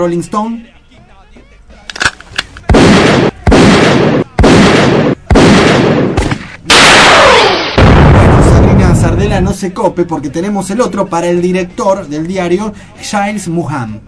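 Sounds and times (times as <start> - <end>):
speech: 0.0 - 0.8, 9.3 - 14.0
double gunshot sound effect: 2.6 - 9.1.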